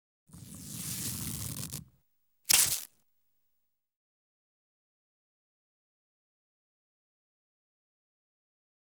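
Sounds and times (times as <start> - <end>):
fabric tearing: 0.3 - 1.9, 2.5 - 2.9.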